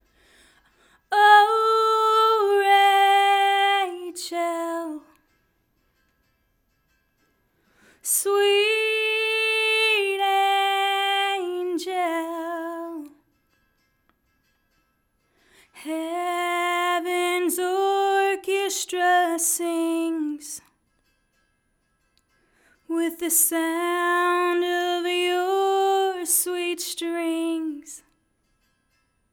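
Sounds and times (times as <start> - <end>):
lead vocal: 0.9 - 5.2, 7.8 - 13.2, 15.6 - 20.6, 22.9 - 28.0.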